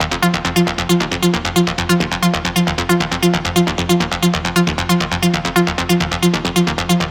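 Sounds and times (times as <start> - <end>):
techno synth loop in D sharp at 135 BPM: 0.0 - 7.0.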